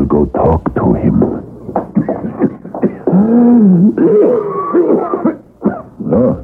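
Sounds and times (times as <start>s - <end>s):
speech: 0.2s - 1.4s, 3.2s - 5.1s
man coughing badly: 2.0s - 6.4s.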